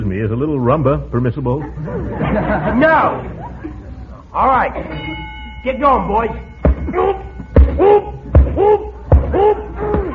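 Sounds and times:
speech: 0.1s - 10.0s
laughter: 1.6s - 4.1s
heavy boxing punches thudding in a ring: 6.6s - 10.1s.

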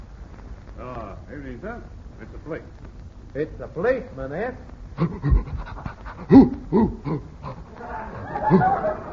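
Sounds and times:
speech: 1.3s - 7.6s, 8.5s - 8.8s
bloodhound huffing and panting: 5.0s - 8.4s
laughter: 7.7s - 9.1s.

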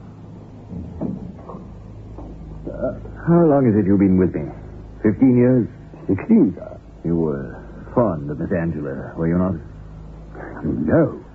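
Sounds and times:
faint rattle: 0.0s - 11.3s
low room hum: 0.0s - 11.3s
door pushed shut with a soft thud: 0.6s - 3.1s
speech: 2.6s - 9.7s, 10.6s - 11.2s.

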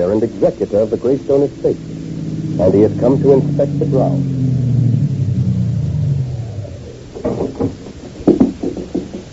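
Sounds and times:
limousine engine rumbling: 0.0s - 8.2s
speech: 0.1s - 2.0s, 2.6s - 4.4s
sharp clunks and knocks: 7.1s - 9.3s.

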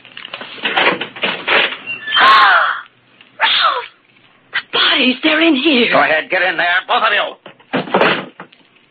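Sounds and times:
closet door rattling and scraping: 0.4s - 2.0s, 7.5s - 8.5s
closet door creaking open: 0.7s - 2.3s
speech: 5.1s - 7.4s.

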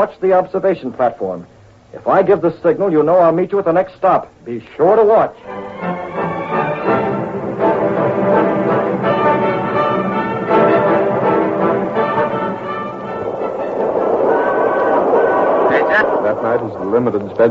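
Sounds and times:
speech: 0.0s - 6.2s, 16.6s - 17.4s
passenger train speeding at night with rumbling roar: 5.4s - 17.4s.

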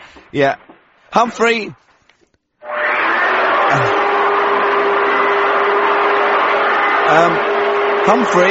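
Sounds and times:
speech: 0.1s - 1.9s, 7.1s - 8.4s
vacuum cleaner running with whooshing roar and motor whine: 3.4s - 8.4s.

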